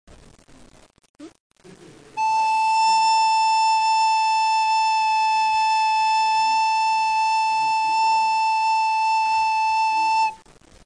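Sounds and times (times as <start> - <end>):
recorder playing a scale: 2.2 - 10.4.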